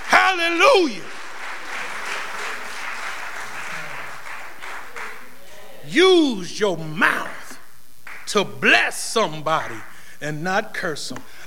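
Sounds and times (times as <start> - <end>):
audience applauding in praise: 0.0 - 6.0, 8.0 - 8.7, 9.4 - 10.0
speech: 0.3 - 1.1, 5.9 - 7.4, 8.3 - 11.4.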